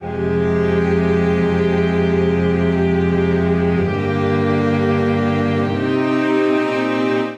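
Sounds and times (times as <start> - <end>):
string quartet playing a C minor chord progression: 0.0 - 7.3.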